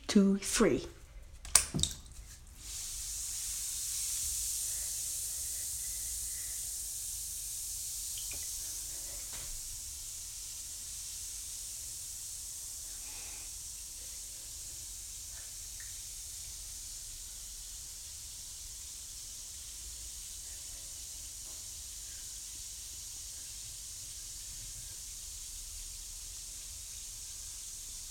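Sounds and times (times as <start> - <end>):
speech: 0.1 - 1.0, 1.7 - 2.0
object splashing into water: 1.5 - 2.2
fizzing hiss: 1.5 - 28.0.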